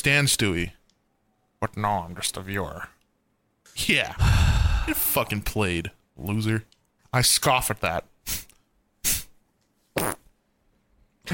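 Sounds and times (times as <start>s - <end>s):
speech: 0.0s - 0.8s, 1.6s - 3.0s, 3.8s - 8.4s
fart sounds: 9.9s - 10.3s.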